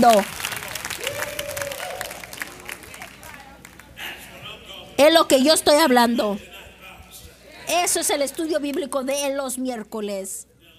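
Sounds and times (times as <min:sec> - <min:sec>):
speech: 0:00.0 - 0:00.4, 0:05.0 - 0:06.5, 0:07.7 - 0:10.5
room full of people applauding: 0:00.0 - 0:03.9
murmur of voices: 0:00.2 - 0:10.7.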